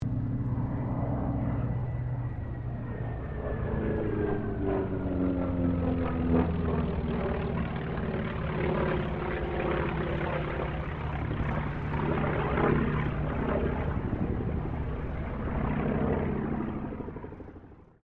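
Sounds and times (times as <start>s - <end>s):
distant T-28D Trojan propeller aircraft passing: 0.0s - 18.0s.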